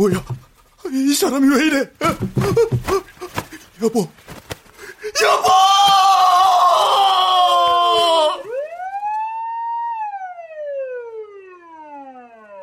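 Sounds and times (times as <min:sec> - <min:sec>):
speech: 0:00.0 - 0:03.1, 0:03.8 - 0:04.2, 0:05.2 - 0:05.7
loud emergency vehicle siren wailing: 0:06.8 - 0:12.6.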